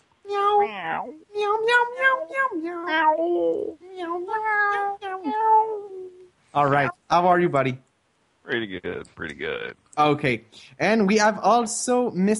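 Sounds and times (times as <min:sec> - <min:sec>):
person imitating cat meows: 0:00.3 - 0:06.9
speech: 0:01.0 - 0:05.3, 0:06.6 - 0:07.8, 0:08.5 - 0:12.3.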